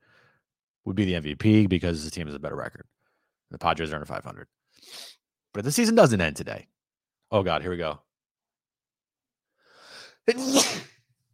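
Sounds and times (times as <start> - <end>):
speech: 0.8 - 8.1, 10.3 - 10.9
person sneezing: 10.3 - 11.0.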